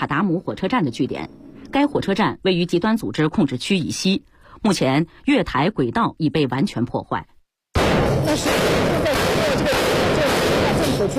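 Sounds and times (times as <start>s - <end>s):
speech: 0.1s - 7.3s, 8.3s - 9.8s
three Syrian government army heavy machine guns firing at extremist-held areas from a wrecked railway station: 7.8s - 11.1s.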